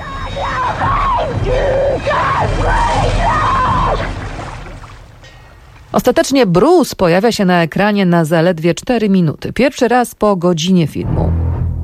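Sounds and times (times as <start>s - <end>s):
girl screaming in a shark-attack film scene at a beach: 0.0s - 4.1s
steady rushing noise: 0.0s - 6.7s
speech: 6.0s - 11.4s.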